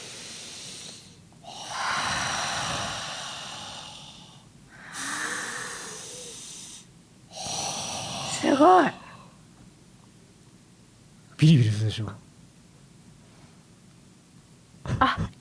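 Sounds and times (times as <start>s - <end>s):
deep hissing breaths through the nose during a nasal treatment: 0.0s - 8.4s
speech: 8.5s - 9.0s, 11.4s - 12.2s.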